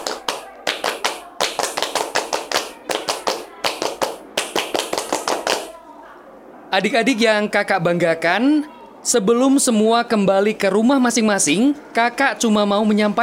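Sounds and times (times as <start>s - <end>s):
group doing the scout clap rhythm: 0.0s - 5.8s
speech: 6.7s - 13.2s.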